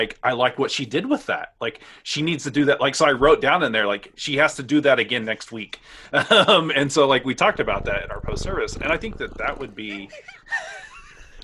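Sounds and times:
speech: 0.0s - 10.8s
laughter: 6.2s - 6.8s, 9.6s - 11.4s
pet cat vocalizing against the microphone: 7.4s - 10.2s.

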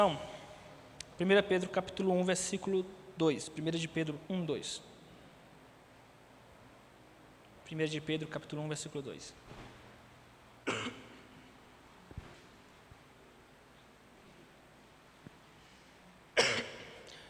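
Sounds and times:
speech: 0.0s - 0.3s, 1.2s - 4.9s, 7.7s - 9.6s
faint rustling: 9.3s - 10.3s, 11.4s - 16.2s
sharp allergic coughs: 10.6s - 11.4s, 16.4s - 17.2s.

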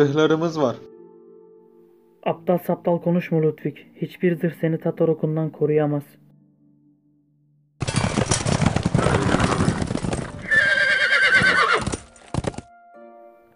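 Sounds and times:
speech: 0.0s - 0.9s, 2.2s - 6.2s
cavalry horses neighing and whinnying in a town square: 7.8s - 12.5s
dense clatter of many cavalry horse hooves: 7.8s - 12.7s.

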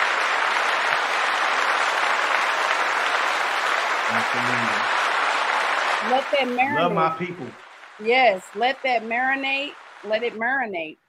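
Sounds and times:
dense crowd applause: 0.0s - 10.6s
laughter: 4.1s - 4.9s, 6.0s - 7.5s
low voice murmuring: 4.1s - 4.9s, 6.6s - 7.6s
speech: 4.1s - 5.0s, 6.0s - 11.0s.

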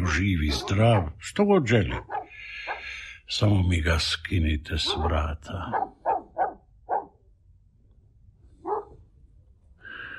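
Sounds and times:
dogs barking at an estate: 0.0s - 3.0s, 4.8s - 7.2s, 8.6s - 9.0s
speech: 0.1s - 2.2s, 3.3s - 6.1s.

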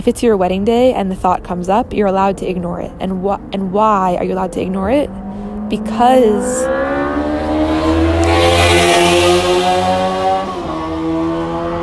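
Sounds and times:
speech: 0.0s - 7.0s
loud modified car exhaust revving: 0.0s - 11.8s.

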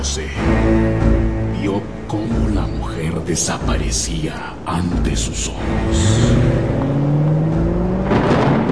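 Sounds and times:
speech: 0.1s - 0.5s, 1.6s - 6.8s
taxi engine accelerating hard: 5.8s - 8.6s.

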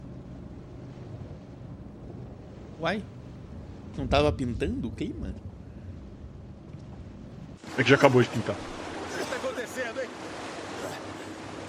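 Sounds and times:
wind buffeting the microphone: 0.0s - 7.6s
low rumble of a boat moving across water: 0.0s - 11.6s
speech: 2.8s - 3.2s, 4.0s - 5.5s, 7.8s - 8.8s, 9.6s - 11.3s.

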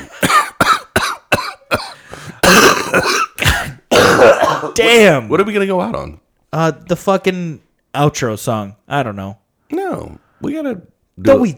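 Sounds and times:
throat clearing into a microphone: 0.0s - 4.8s
person coughing into a microphone: 0.0s - 4.9s
speech: 2.9s - 3.3s, 4.7s - 11.5s.

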